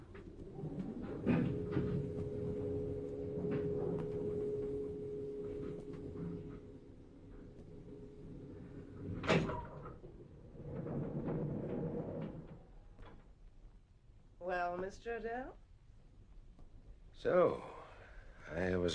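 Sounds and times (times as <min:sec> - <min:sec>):
self-operating lift doors sliding shut: 0:00.6 - 0:12.6
speech: 0:14.9 - 0:15.6, 0:17.2 - 0:17.7, 0:18.5 - 0:18.9.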